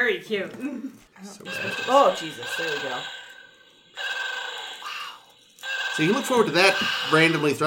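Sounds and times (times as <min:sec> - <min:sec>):
speech: 0:00.1 - 0:03.2, 0:06.0 - 0:07.6
electronic toy warbling trill while vibrating: 0:01.5 - 0:07.6.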